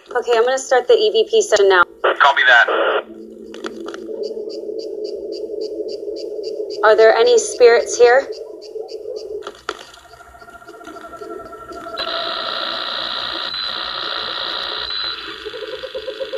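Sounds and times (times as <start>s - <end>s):
continuous hissing radio static with crackles: 0.0s - 4.1s, 11.0s - 16.3s
faint garbled voice-like fragments: 0.1s - 3.1s
speech: 0.2s - 3.2s, 6.8s - 8.4s.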